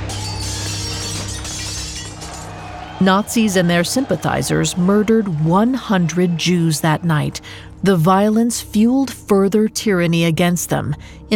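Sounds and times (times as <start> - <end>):
glass shattering and crashing: 0.0 - 2.9
speech: 3.0 - 11.3.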